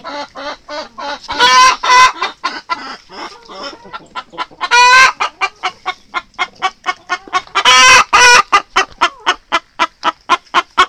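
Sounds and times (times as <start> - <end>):
chicken clucking: 0.0 - 10.8.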